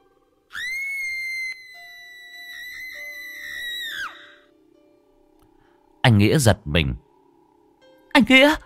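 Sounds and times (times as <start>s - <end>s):
woman screaming shrilly: 0.5s - 4.4s
speech: 6.1s - 7.0s, 8.2s - 8.6s.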